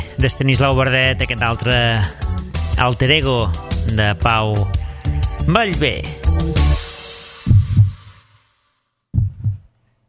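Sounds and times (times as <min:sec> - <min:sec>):
speech: 0:00.2 - 0:02.2, 0:02.8 - 0:04.8, 0:05.5 - 0:06.8
deep heartbeat double thumps: 0:07.4 - 0:08.2, 0:09.1 - 0:09.7.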